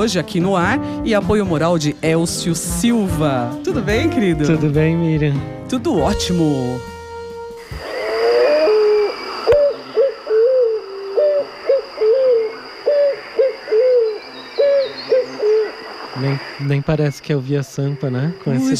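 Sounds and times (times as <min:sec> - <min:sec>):
speech: 0:00.0 - 0:06.9, 0:16.6 - 0:18.7
faint constant high hiss: 0:07.3 - 0:18.7
picazuro pigeon cooing hoots: 0:07.6 - 0:16.0.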